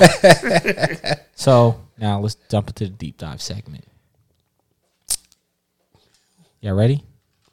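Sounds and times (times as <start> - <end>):
laughter: 0.0 - 1.3
speech: 0.0 - 3.9, 6.6 - 7.1
person biting and chewing crunchy food: 5.1 - 5.4.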